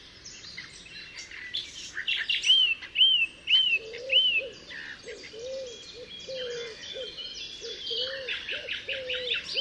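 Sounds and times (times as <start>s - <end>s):
common nightingale singing at Altmühlsee in Germany: 0.0s - 9.5s
low repeated cooing, likely a dove: 3.6s - 9.5s.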